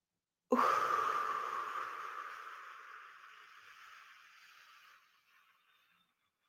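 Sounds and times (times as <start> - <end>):
long steady breathy exhale: 0.5 - 5.0.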